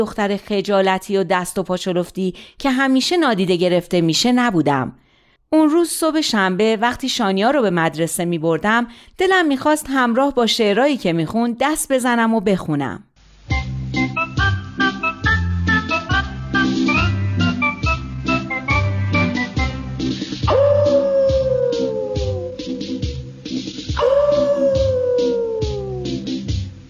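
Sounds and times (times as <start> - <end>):
speech: 0.0 - 13.1
bouncy rhythmic musical backing: 13.4 - 26.8
wolf howling: 20.5 - 23.3, 24.0 - 26.2.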